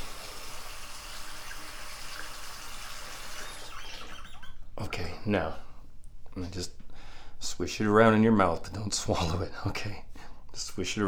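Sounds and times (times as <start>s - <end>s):
water being poured for drinking: 0.0s - 4.6s
speech: 4.8s - 5.7s, 6.4s - 6.8s, 7.4s - 11.0s.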